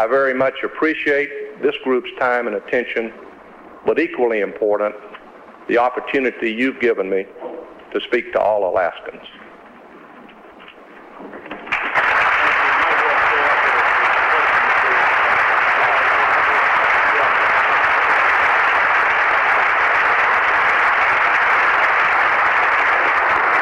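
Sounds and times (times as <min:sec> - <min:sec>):
speech: 0:00.0 - 0:09.4
large audience applause after a speech at a chamber of commerce: 0:11.5 - 0:23.5.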